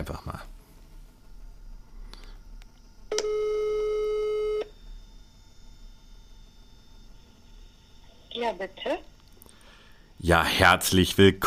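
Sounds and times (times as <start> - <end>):
speech: 0.0 - 0.4, 8.4 - 9.1, 10.2 - 11.4
telephone ringing tone on an outgoing call: 3.1 - 4.8.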